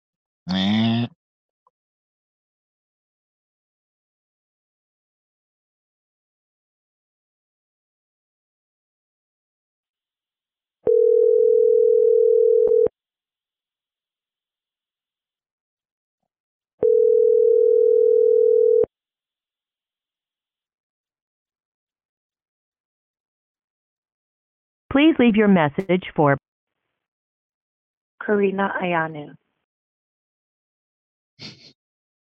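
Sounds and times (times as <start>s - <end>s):
ringing tone of an outgoing phone call: 10.9s - 12.9s, 16.8s - 18.9s
speech: 25.0s - 26.5s, 28.2s - 29.4s.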